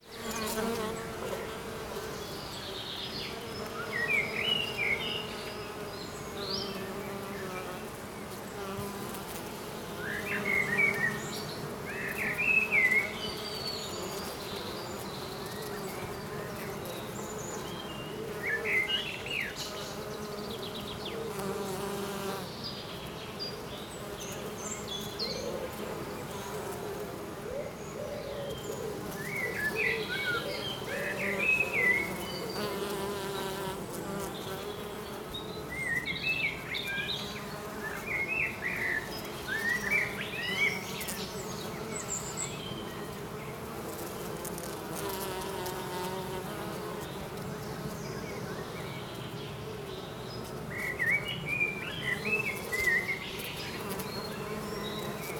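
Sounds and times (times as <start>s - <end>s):
bee in a soundscape: 0.0s - 55.3s.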